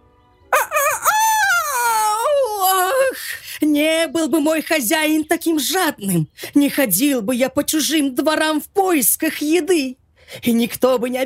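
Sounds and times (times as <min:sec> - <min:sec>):
rooster crying out in pain after being struck by a thrown poker: 0:00.5 - 0:03.0
speech: 0:03.8 - 0:11.2.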